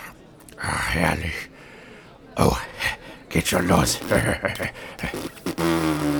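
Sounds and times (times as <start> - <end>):
speech: 0.6 - 1.5, 2.4 - 2.7, 3.3 - 6.1
buzzy fart in a pub: 4.0 - 4.2, 5.0 - 6.1.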